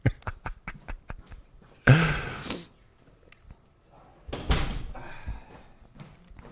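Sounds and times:
quick light footsteps: 0.3s - 1.9s, 4.7s - 6.5s
door pushed shut with a heavy thud: 4.3s - 5.0s.

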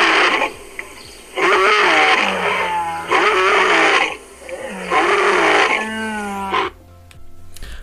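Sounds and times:
lion roaring and snarling: 0.0s - 6.8s.

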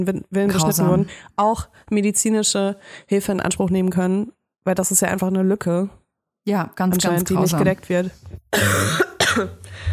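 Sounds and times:
speech: 0.0s - 9.9s
person coughing harshly: 8.5s - 9.6s.

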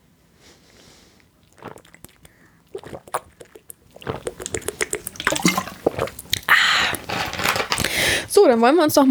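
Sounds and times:
person sipping and gulping a drink: 1.2s - 8.3s
speech: 8.5s - 9.1s.

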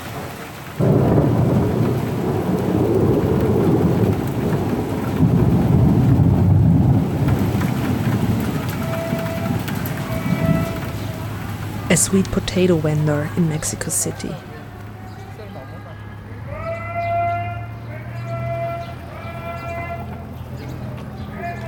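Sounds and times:
steady rain: 0.0s - 21.6s
deep rolling thunder: 0.2s - 11.9s
speech: 12.0s - 14.5s.

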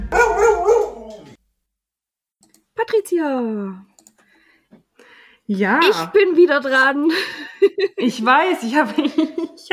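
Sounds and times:
dog barking: 0.1s - 1.4s
speech: 3.2s - 3.9s, 5.5s - 9.7s.

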